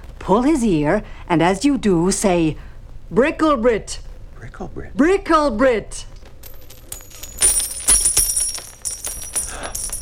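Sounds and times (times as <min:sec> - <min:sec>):
speech: 0:00.3 - 0:06.1
metal coins clinking and jingling as they drop and scatter: 0:06.4 - 0:10.0.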